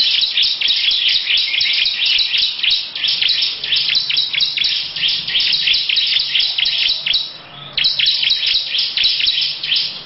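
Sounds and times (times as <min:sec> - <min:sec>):
lovebird chattering song in long ngekek style: 0:00.0 - 0:10.0.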